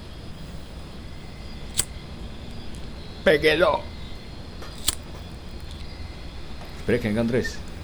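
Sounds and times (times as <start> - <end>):
quiet hum: 0.0 - 7.8
lighter being struck with a sharp bright click: 1.5 - 2.9, 4.6 - 5.9
speech: 3.2 - 3.9, 6.9 - 7.6.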